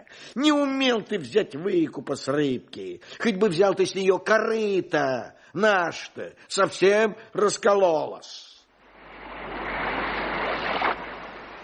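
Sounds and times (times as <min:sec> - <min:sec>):
speech: 0:00.2 - 0:08.5
waves of a slightly rough sea washing: 0:08.8 - 0:11.6.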